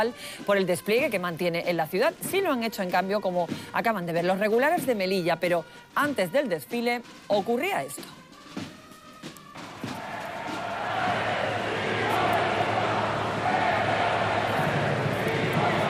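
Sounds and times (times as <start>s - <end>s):
speech: 0.0s - 8.2s
large outdoor crowd whistling and booing: 9.3s - 15.8s
scattered shouts in crowd: 9.6s - 15.8s.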